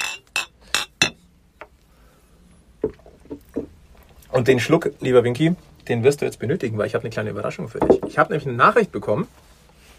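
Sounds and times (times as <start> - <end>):
glasses clinking in a toast: 0.0 - 1.2
speech: 4.3 - 9.4.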